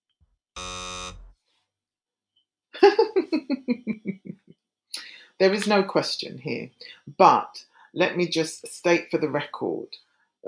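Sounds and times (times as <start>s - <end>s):
loud harsh game-show buzzer: 0.6s - 1.3s
burst of rhythmic laughter: 2.8s - 4.3s
speech: 3.4s - 4.1s, 5.4s - 10.4s.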